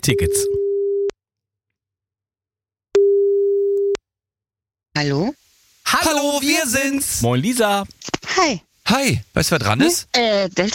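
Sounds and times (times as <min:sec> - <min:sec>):
speech: 0:00.0 - 0:00.6, 0:05.0 - 0:10.7
telephone ringback tone on an outgoing call: 0:03.0 - 0:04.0.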